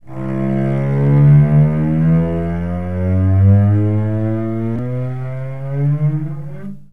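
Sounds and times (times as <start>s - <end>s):
cello sliding up: 0.0s - 6.9s.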